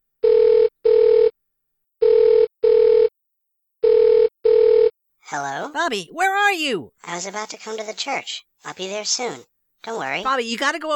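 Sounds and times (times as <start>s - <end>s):
cell phone ringback tone in paired bursts: 0.2s - 1.3s, 2.0s - 3.1s, 3.8s - 4.9s
speech: 5.3s - 10.9s.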